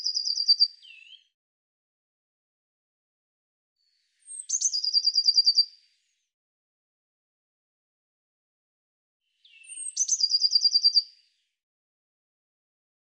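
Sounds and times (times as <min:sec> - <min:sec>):
bird song trills: 0:00.0 - 0:01.4, 0:03.9 - 0:06.3, 0:09.3 - 0:11.6.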